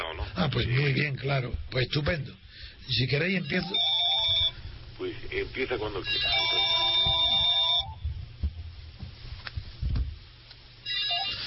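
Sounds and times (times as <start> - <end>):
speech: 0.0 - 3.9, 5.0 - 6.8
faint noise: 0.0 - 11.4
telephone ringing with a bright electronic warble: 3.4 - 4.6, 6.0 - 8.0, 10.8 - 11.4.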